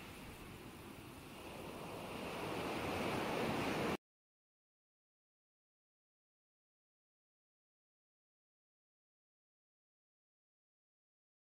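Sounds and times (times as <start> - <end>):
ocean waves breaking on shore: 0.0 - 4.0.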